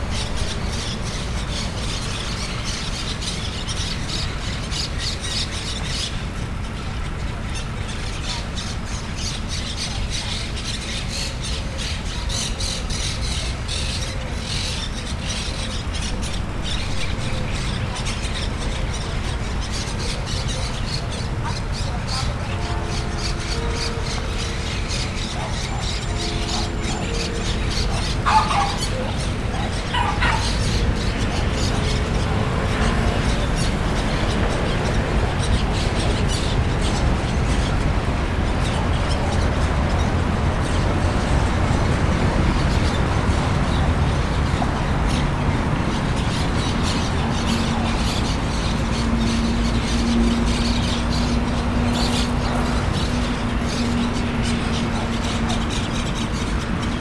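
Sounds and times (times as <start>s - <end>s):
vehicle traffic: 0.0s - 57.0s
dog: 25.3s - 31.4s.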